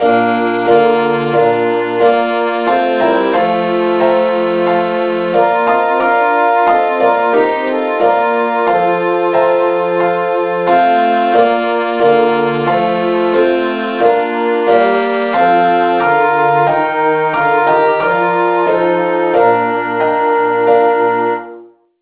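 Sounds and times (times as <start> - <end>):
four-part SATB choir singing in B-flat: 0.0 - 21.4.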